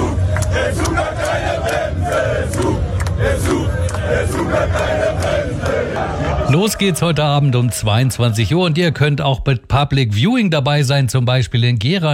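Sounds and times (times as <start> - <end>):
crowd of German football fans cheering and chanting on Times Square in New York: 0.0 - 9.5
speech: 6.5 - 12.1.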